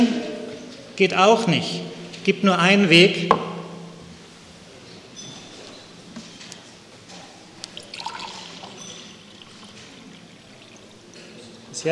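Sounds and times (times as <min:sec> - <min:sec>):
speech: 0:01.0 - 0:03.5
water pouring into a container: 0:07.5 - 0:11.6.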